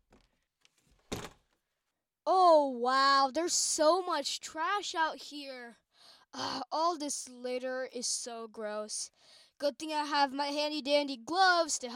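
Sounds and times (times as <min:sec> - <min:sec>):
wooden door thump and scrape as it swings: 0:00.9 - 0:01.5
door latch rattle and handle click: 0:01.1 - 0:01.4
speech: 0:02.6 - 0:11.9.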